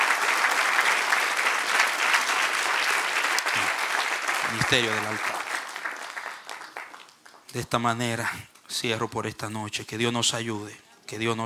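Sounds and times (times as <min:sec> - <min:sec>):
church audience applauding at a preacher's call: 0:00.0 - 0:07.6
speech: 0:04.5 - 0:05.5, 0:07.5 - 0:11.4.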